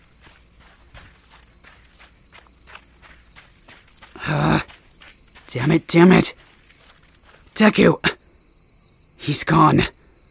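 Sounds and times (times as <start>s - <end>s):
footsteps of someone running while carrying another person: 0.0s - 8.1s
speech: 4.3s - 4.6s, 5.5s - 6.4s, 7.6s - 8.1s, 9.3s - 10.0s.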